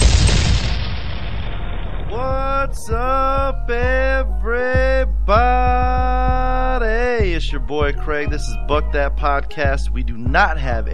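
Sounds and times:
loud cannon blast: 0.0 - 2.6
speech: 2.2 - 6.2, 7.2 - 10.9.

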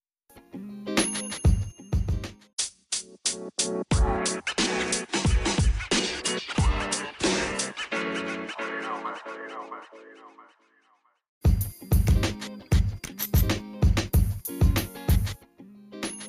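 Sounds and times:
hip-hop track with punchy drums and synth: 2.9 - 10.5, 11.5 - 15.4.

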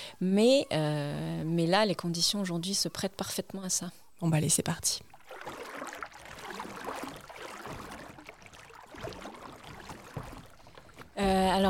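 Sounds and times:
speech: 0.2 - 5.6, 11.2 - 11.6
kayak paddles dipping and splashing in water: 5.1 - 11.6.

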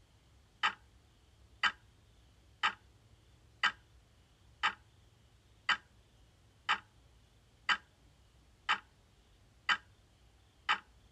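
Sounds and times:
faint low hum: 0.0 - 11.1
analog clock ticking: 0.6 - 0.8, 1.6 - 1.8, 2.6 - 2.8, 3.6 - 3.8, 4.6 - 4.8, 5.7 - 5.9, 6.7 - 6.9, 7.7 - 7.9, 8.7 - 8.9, 9.7 - 9.9, 10.7 - 10.9.

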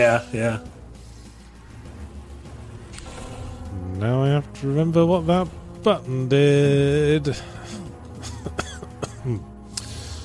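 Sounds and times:
speech: 0.0 - 0.7, 4.0 - 7.5, 9.2 - 9.5
person coughing: 7.7 - 9.5
throaty rasping throat clearing: 8.4 - 9.4.

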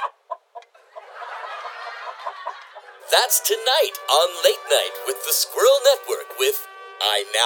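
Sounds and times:
chicken clucking: 0.0 - 2.9
laughter: 0.7 - 7.2
speech: 3.1 - 7.4.

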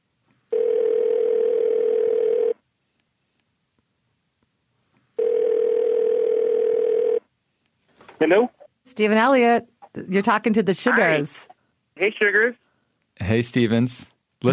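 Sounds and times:
telephone tones while placing a call: 0.5 - 2.6, 5.2 - 7.3
speech: 8.2 - 12.6, 13.2 - 14.5.

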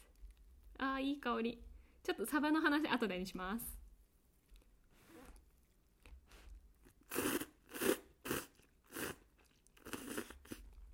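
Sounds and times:
speech: 1.0 - 3.8
someone eating instant cup noodles, crunching bites and chewing: 5.3 - 10.9.

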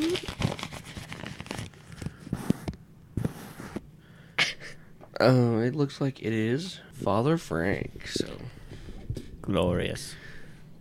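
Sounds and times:
paper being crumpled and unfolded: 0.0 - 2.7
speech: 5.2 - 8.4, 9.5 - 10.3.

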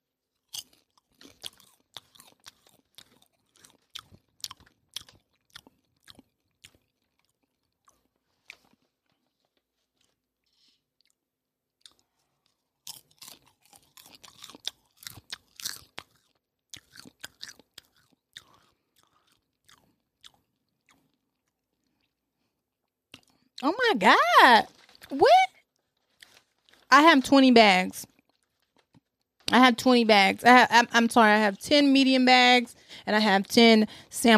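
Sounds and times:
person chewing food cooked on a plank: 0.2 - 23.6, 24.7 - 26.9, 28.0 - 29.5
speech: 23.6 - 25.5, 27.0 - 28.1, 29.5 - 34.3.

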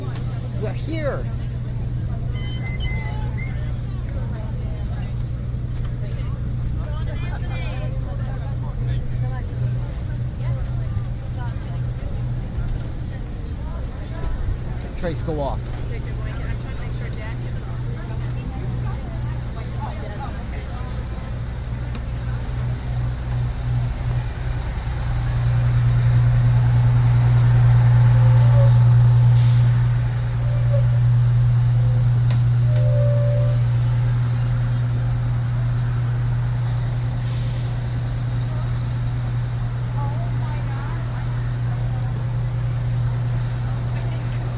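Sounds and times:
large bus engine idling: 0.0 - 44.5
speech: 0.6 - 1.4, 15.0 - 15.7
bus air brakes releasing with hissing bursts: 28.6 - 31.0, 37.2 - 38.0.

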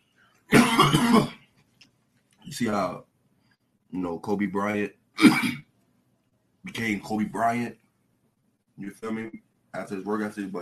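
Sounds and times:
single harsh cough from a chronic cough: 0.5 - 1.4, 5.2 - 5.6
speech: 2.6 - 3.1, 3.9 - 5.7, 6.6 - 7.8, 8.8 - 10.5.

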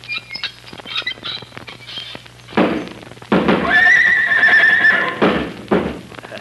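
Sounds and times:
horse kicking up its heels: 2.6 - 6.1
horse whinnying: 3.6 - 5.2.

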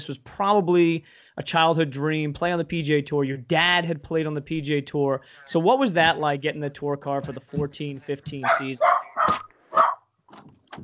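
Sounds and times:
speech: 0.0 - 9.8
dog barking: 8.4 - 10.1.

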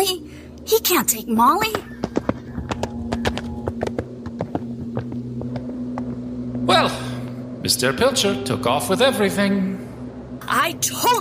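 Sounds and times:
low continuous hum: 0.0 - 11.1
speech: 0.1 - 2.1, 7.7 - 9.8, 10.5 - 11.1
horse hooves clip-clopping as a rider rides off on a horse loaded with beaver pelts: 1.5 - 6.7.

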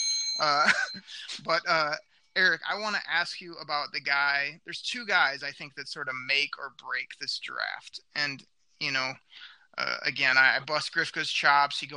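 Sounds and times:
bell ringing: 0.0 - 1.4
laughter: 0.4 - 3.4
speech: 0.4 - 11.9.

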